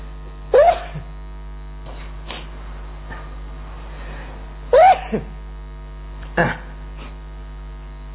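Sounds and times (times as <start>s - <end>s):
steady low electrical hum: 0.0s - 8.1s
person sneezing: 0.6s - 1.1s, 1.9s - 2.5s, 4.7s - 5.4s, 6.2s - 7.2s.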